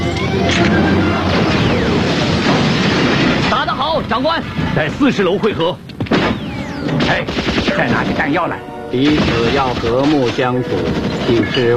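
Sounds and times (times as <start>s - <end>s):
grenade explosions in a radio drama battle scene: 0.0s - 5.2s, 6.0s - 11.7s
speech: 0.3s - 2.1s, 4.0s - 11.7s.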